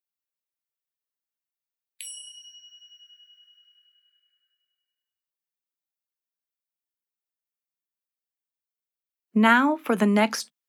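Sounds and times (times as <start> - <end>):
meditation chime ringing: 2.0 - 5.0
speech: 9.4 - 10.5.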